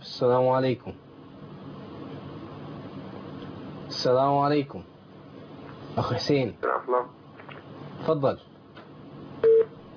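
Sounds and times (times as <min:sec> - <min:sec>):
speech: 0:00.2 - 0:01.1, 0:04.0 - 0:04.9, 0:06.0 - 0:07.2, 0:08.0 - 0:08.5
telephone line tone as a phone-in call cuts off: 0:09.4 - 0:09.7.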